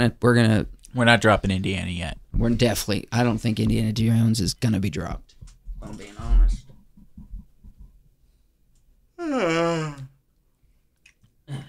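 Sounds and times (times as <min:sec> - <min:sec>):
speech: 0:00.0 - 0:05.2, 0:05.8 - 0:06.6, 0:09.2 - 0:10.1
person yawning: 0:09.2 - 0:10.2.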